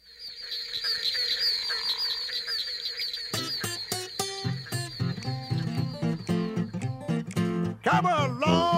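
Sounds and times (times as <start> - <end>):
dense chorus of many frogs trilling: 0.0 - 6.8
speech: 7.9 - 8.6.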